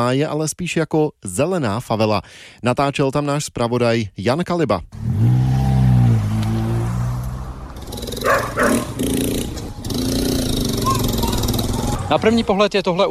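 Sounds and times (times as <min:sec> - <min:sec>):
speech: 0:00.0 - 0:05.3, 0:12.1 - 0:13.0
street noise: 0:04.9 - 0:13.0
engine rumble: 0:05.0 - 0:12.6
dogs barking at arriving visitors: 0:08.2 - 0:09.0.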